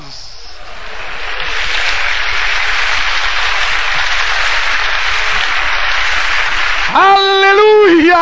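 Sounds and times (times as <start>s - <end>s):
large crowd applauding: 0.5s - 8.1s.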